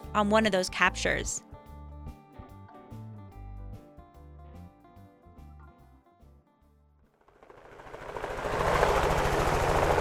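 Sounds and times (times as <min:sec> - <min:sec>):
music: 0:00.0 - 0:07.3
speech: 0:00.2 - 0:01.5
helicopter rotor chop and roar passing overhead: 0:07.2 - 0:09.9.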